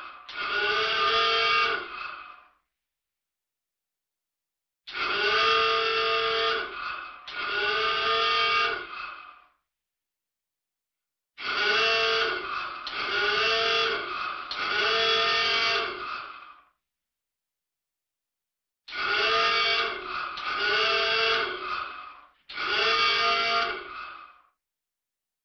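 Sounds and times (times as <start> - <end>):
alarm signal on a submarine: 0.4 - 1.9, 5.2 - 8.9, 11.5 - 16.1, 19.0 - 21.7, 22.6 - 23.9.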